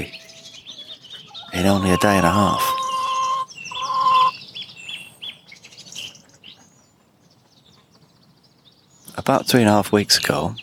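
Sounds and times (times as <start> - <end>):
chicken clucking and squawking: 1.2 - 4.3
speech: 1.6 - 2.7, 9.3 - 10.6.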